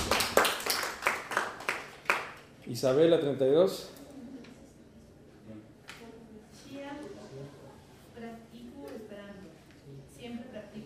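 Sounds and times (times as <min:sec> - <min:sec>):
classroom clapping for a student's correct answer: 0:00.0 - 0:02.4
speech: 0:02.7 - 0:04.0.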